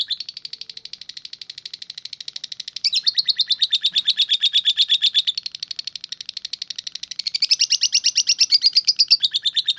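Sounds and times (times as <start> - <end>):
lovebird singing in high harsh chattering chirps: 0.0 - 9.7.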